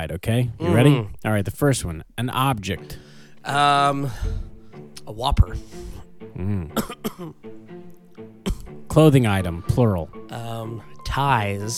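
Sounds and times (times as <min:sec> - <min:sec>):
speech: 0:00.0 - 0:04.5, 0:05.1 - 0:07.7, 0:09.0 - 0:11.7
rough breathing: 0:02.8 - 0:03.4, 0:04.0 - 0:04.9, 0:05.6 - 0:06.8
person coughing: 0:06.4 - 0:07.4, 0:08.4 - 0:08.7.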